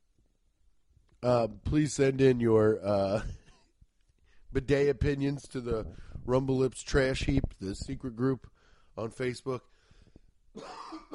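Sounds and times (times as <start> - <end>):
speech: 1.2 - 3.4, 4.5 - 9.7, 10.6 - 11.0
harsh cough: 10.6 - 11.1
rough throat clearing: 10.6 - 11.1.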